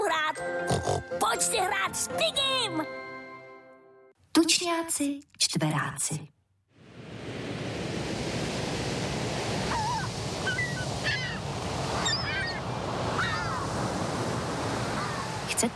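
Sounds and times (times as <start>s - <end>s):
speech: 0.8s - 3.0s, 4.4s - 6.4s, 15.6s - 15.7s
ocean surf washing on the shore: 6.8s - 15.7s.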